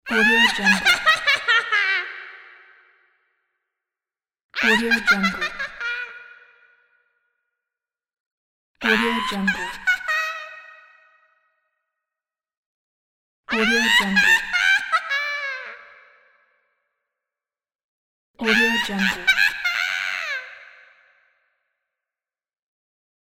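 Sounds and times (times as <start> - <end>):
witch cackling laughter: 0.1 - 2.7, 4.6 - 6.4, 8.8 - 10.9, 13.5 - 16.1, 18.4 - 20.9.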